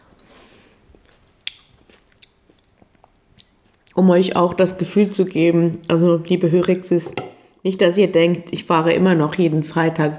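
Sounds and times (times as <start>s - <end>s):
mouth and eating noises of someone eating soup at home: 0.8s - 6.0s
speech: 4.0s - 10.1s.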